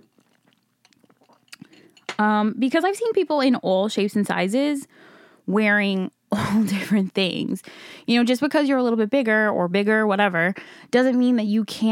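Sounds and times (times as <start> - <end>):
person gulping: 0.0 - 2.1
person sipping coffee: 0.0 - 2.1
speech: 2.2 - 11.9.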